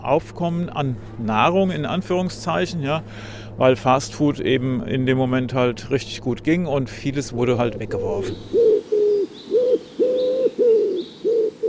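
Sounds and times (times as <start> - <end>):
speech: 0.0 - 8.7
pigeons cooing: 7.6 - 11.6.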